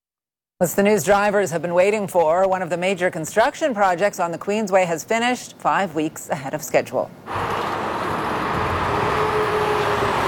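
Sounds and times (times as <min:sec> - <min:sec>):
speech: 0:00.6 - 0:07.5
highway traffic flowing past: 0:07.3 - 0:10.2.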